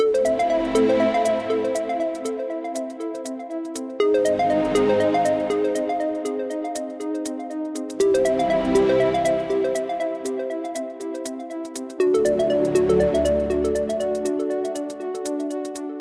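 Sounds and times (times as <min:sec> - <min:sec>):
intro free spin music loop: 0:00.0 - 0:15.9.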